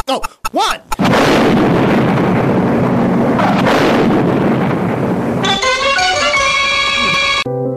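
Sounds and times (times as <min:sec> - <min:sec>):
explosion of a bag of fertilizer in a telephone booth: 0:01.0 - 0:07.5
bright ringing musical tone: 0:05.4 - 0:07.5.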